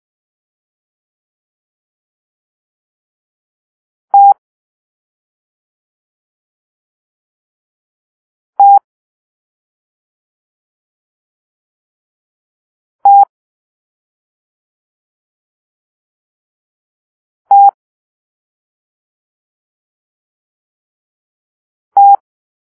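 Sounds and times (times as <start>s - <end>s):
Morse code letter T tones: 4.1s - 4.3s, 17.5s - 17.7s, 22.0s - 22.2s.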